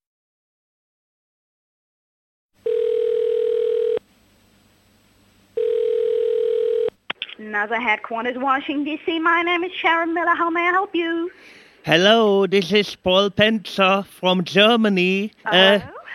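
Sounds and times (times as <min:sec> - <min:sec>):
long steady telephone tones after a call is hung up: 0:02.6 - 0:04.1, 0:05.5 - 0:07.0
speech: 0:07.5 - 0:16.0.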